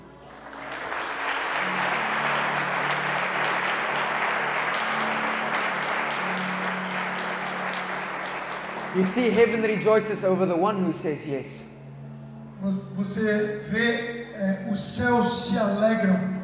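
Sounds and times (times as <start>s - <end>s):
congregation applauding at a church service: 0.0s - 10.2s
speech: 9.0s - 11.6s, 12.6s - 16.3s.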